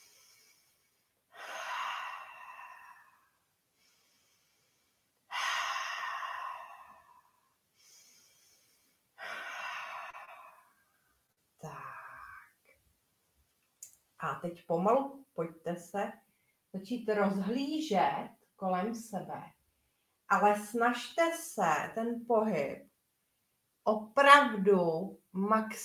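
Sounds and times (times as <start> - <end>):
slow deep breathing in and out: 0.0 - 12.5
speech: 14.2 - 19.6, 20.3 - 22.9, 23.9 - 25.8.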